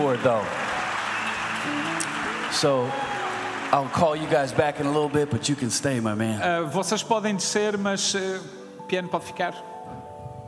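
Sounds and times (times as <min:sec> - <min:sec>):
speech: 0:00.0 - 0:00.6, 0:01.6 - 0:10.0
people cheering: 0:00.0 - 0:06.2
audience clapping: 0:00.0 - 0:06.4.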